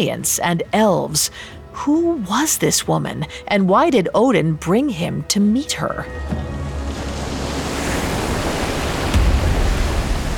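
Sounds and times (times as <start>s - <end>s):
speech: 0.0s - 6.6s
ocean waves crashing against a ship: 6.1s - 10.3s.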